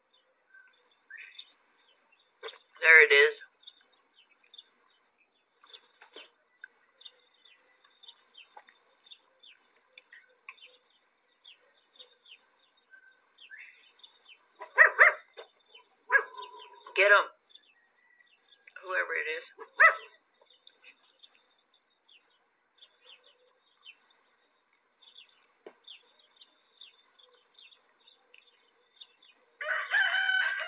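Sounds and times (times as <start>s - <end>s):
small birds chirping and tweeting: 0.0s - 30.6s
speech: 2.8s - 3.4s
small chihuahua yapping barks: 14.6s - 17.0s, 19.6s - 20.2s
pet rooster crowing: 29.6s - 30.6s.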